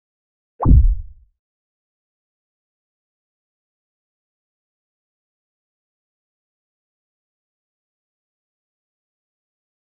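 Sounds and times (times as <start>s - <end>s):
short jump sound: 0.6s - 1.2s.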